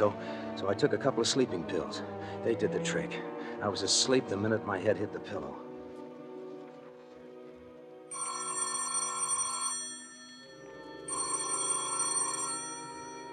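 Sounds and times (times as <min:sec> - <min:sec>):
speech: 0:00.0 - 0:05.6
telephone bell ringing: 0:08.1 - 0:13.3.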